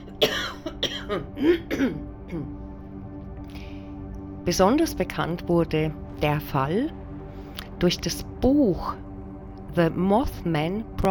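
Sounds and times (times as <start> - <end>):
fit of harsh rasping coughing: 0.0 - 2.6
speech: 1.1 - 2.6, 4.4 - 7.0, 7.8 - 9.0, 9.8 - 11.0.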